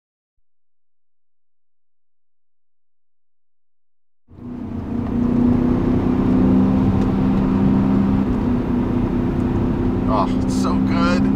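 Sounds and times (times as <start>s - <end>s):
car engine starting and droning: 4.3s - 11.3s.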